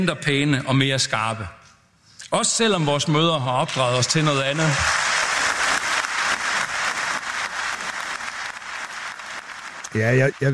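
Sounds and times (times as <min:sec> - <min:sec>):
speech: 0:00.0 - 0:01.6, 0:02.3 - 0:05.0, 0:10.0 - 0:10.5
audience applause at a political party meeting: 0:03.4 - 0:10.5.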